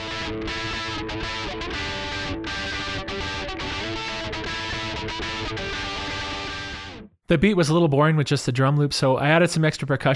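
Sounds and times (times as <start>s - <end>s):
distorted electric guitar chords in a rock mix: 0.0s - 7.1s
speech: 7.3s - 10.1s.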